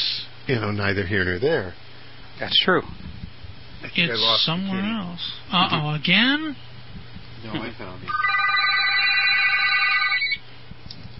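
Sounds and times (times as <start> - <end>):
faint hum: 0.0 - 11.1
speech: 0.5 - 3.1, 3.8 - 6.7, 7.4 - 8.4
telephone ringing with an electronic trill: 8.1 - 10.4.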